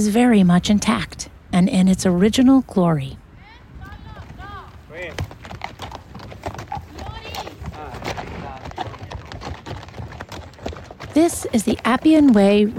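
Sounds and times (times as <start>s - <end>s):
speech: 0.0s - 3.2s, 11.2s - 12.7s
horses clomping on basalt stone paving: 3.8s - 12.7s.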